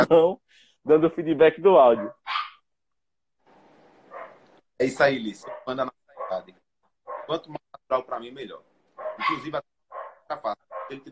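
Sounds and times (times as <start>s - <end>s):
speech: 0.0s - 2.2s, 4.8s - 6.6s, 7.3s - 9.7s, 10.3s - 11.1s
dog barking: 1.9s - 2.6s, 4.1s - 4.4s, 5.4s - 6.5s, 7.1s - 7.4s, 9.0s - 11.1s.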